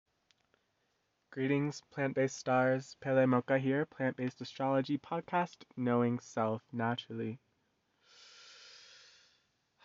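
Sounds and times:
speech: 0:01.3 - 0:07.4
deep breath drawn in: 0:08.0 - 0:09.8.

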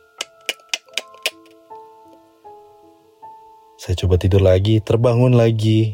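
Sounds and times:
house gecko chirping clicks in front of a bedroom window: 0:00.0 - 0:01.5
speech: 0:03.8 - 0:05.9.

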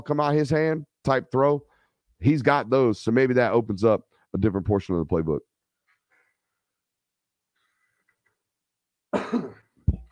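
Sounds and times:
speech: 0:00.0 - 0:05.5, 0:09.3 - 0:09.6
person coughing: 0:09.1 - 0:10.1.

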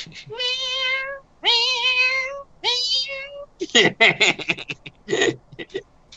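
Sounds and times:
people talking: 0:00.0 - 0:00.4, 0:02.6 - 0:05.8
cat meowing: 0:00.3 - 0:03.5
people laughing: 0:03.6 - 0:05.8.

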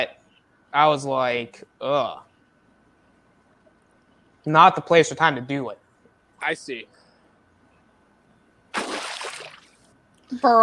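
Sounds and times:
speech: 0:00.0 - 0:02.3, 0:04.4 - 0:05.8, 0:06.4 - 0:07.0, 0:10.3 - 0:10.6
water splashing: 0:08.7 - 0:09.8.

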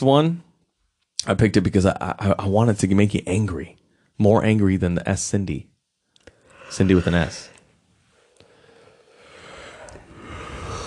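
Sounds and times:
speech: 0:00.0 - 0:00.4, 0:01.2 - 0:05.7, 0:06.7 - 0:07.5
long breathy yawn: 0:06.4 - 0:07.6, 0:09.0 - 0:10.8.

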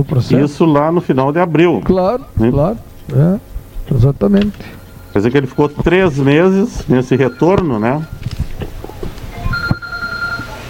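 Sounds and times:
speech: 0:00.0 - 0:08.4
telephone ringing with an electronic tone: 0:04.5 - 0:08.2, 0:09.3 - 0:10.6.

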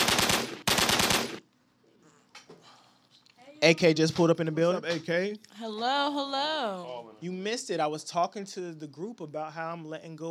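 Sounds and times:
rapid burst of gunfire: 0:00.0 - 0:01.4
speech: 0:03.6 - 0:10.2.

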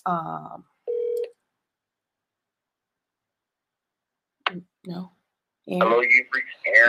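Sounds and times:
speech: 0:00.0 - 0:00.7, 0:04.5 - 0:06.8
phone call electronic ring bursts: 0:00.9 - 0:01.3.

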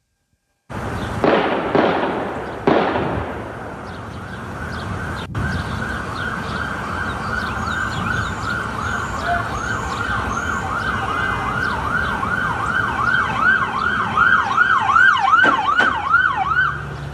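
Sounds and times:
steady noisy outdoor background: 0:00.0 - 0:17.1
sirens wailing: 0:00.7 - 0:17.1
loud sharp gunshot-like pops at a bank: 0:01.2 - 0:03.7, 0:15.3 - 0:16.1.

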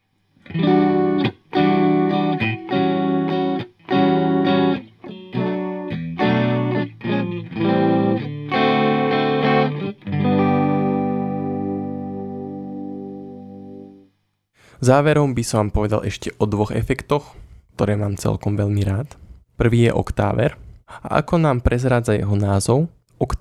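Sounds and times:
electric guitar strumming chords through chorus effect: 0:00.4 - 0:14.0
speech: 0:14.8 - 0:23.3.

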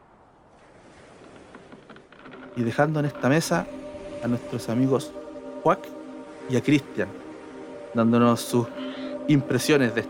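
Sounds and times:
faint rush of wind over the water: 0:00.0 - 0:07.8
ocean waves washing and churning: 0:00.0 - 0:10.0
speech: 0:02.6 - 0:07.3, 0:07.9 - 0:10.0.

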